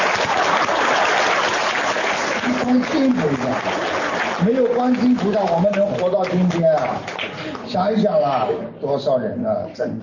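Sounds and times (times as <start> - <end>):
audience clapping warmly: 0.0 - 7.9
speech: 2.7 - 10.0.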